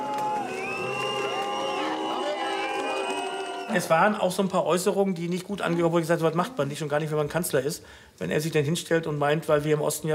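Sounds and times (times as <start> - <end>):
large crowd booing and shouting: 0.0 - 4.0
shrill whistles from a crowd: 0.3 - 3.8
speech: 3.7 - 10.1.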